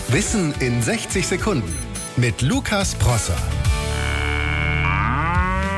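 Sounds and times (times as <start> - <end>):
speech: 0.1 - 3.7
cow giving a long loud droning moo: 3.8 - 5.7.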